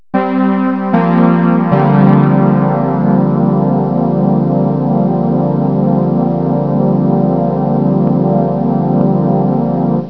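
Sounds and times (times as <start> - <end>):
chorus effect sound: 0.2 - 10.0.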